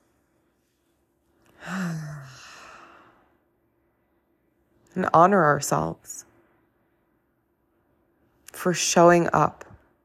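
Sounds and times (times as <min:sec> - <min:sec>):
deep breath: 0:01.5 - 0:04.4
speech: 0:05.0 - 0:06.3, 0:08.6 - 0:09.7.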